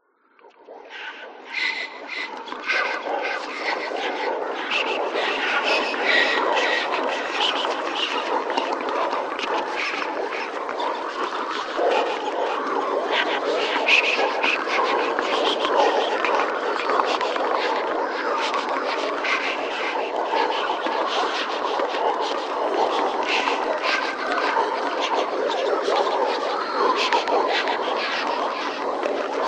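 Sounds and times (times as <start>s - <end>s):
horror ghost whispers: 0.4s - 29.4s.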